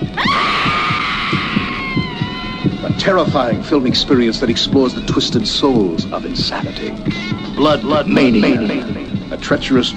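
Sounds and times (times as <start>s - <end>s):
shrill scream from a horror film trailer: 0.0s - 3.6s
speech: 3.0s - 9.9s.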